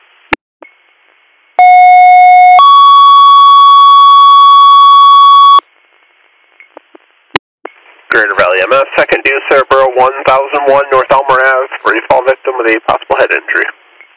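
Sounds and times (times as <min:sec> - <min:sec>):
fire dispatch electronic paging alert tones: 0:01.6 - 0:05.6
radio static: 0:07.8 - 0:14.1
speech: 0:08.7 - 0:13.8.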